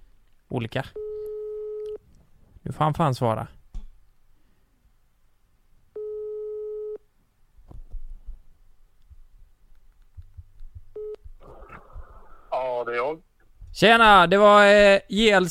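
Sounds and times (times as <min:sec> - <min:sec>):
speech: 0:00.5 - 0:01.0, 0:02.6 - 0:03.6, 0:13.8 - 0:15.4
telephone ringback tone while placing a call: 0:01.0 - 0:02.0, 0:06.0 - 0:07.0.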